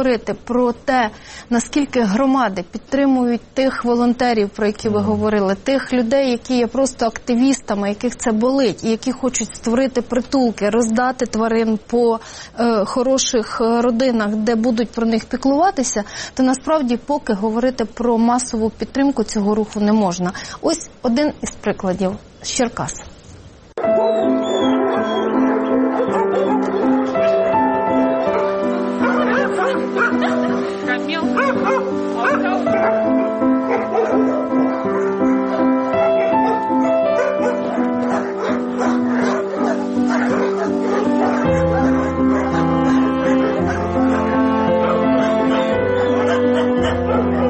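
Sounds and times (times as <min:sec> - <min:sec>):
speech: 0:00.0 - 0:23.2, 0:23.8 - 0:24.8
many dogs barking and yipping at an animal shelter: 0:23.8 - 0:47.4.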